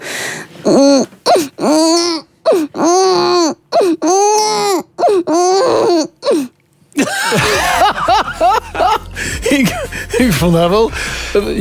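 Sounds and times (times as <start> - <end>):
speech: 0.6 - 1.1, 10.4 - 11.6
person imitating a crying baby live on radio: 0.6 - 6.5
laughter: 7.0 - 10.4.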